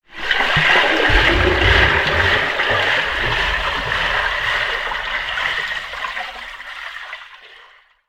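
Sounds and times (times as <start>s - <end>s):
person swimming front crawl recorded underwater: 0.1s - 7.2s.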